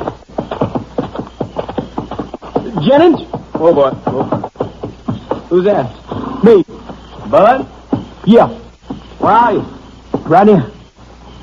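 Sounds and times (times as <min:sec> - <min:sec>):
horse hooves clip-clopping: 0:00.0 - 0:11.4
speech: 0:02.8 - 0:04.5, 0:05.5 - 0:06.7, 0:07.3 - 0:08.6, 0:09.2 - 0:10.8.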